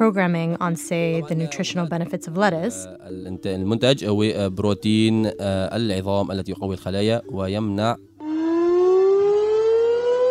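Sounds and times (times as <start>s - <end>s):
speech: 0.0s - 8.1s
air raid siren wailing: 8.2s - 10.3s.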